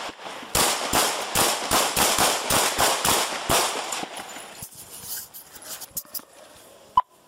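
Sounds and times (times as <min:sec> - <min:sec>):
gunshots during a police confrontation with an armed man: 0:00.0 - 0:04.4.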